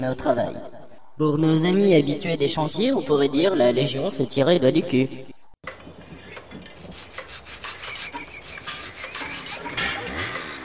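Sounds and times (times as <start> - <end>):
speech: 0.0 - 5.3
hammer blows: 5.7 - 10.6
sawing wood: 5.8 - 10.6.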